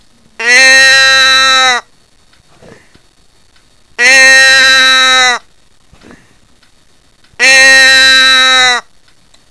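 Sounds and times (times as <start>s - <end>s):
fawn bleat: 0.4s - 1.9s, 4.0s - 5.5s, 7.4s - 8.9s.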